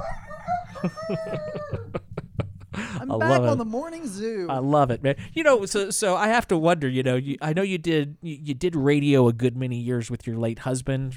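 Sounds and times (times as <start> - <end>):
rooster crowing sound effect on a radio broadcast: 0.0 - 2.0
laughter: 0.7 - 3.6
speech: 0.8 - 2.0, 3.1 - 11.1.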